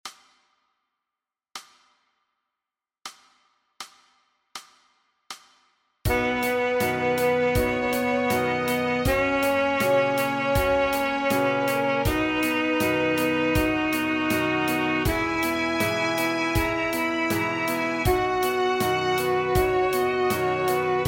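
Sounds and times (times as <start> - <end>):
A-flat musical scale: 6.1 - 21.0.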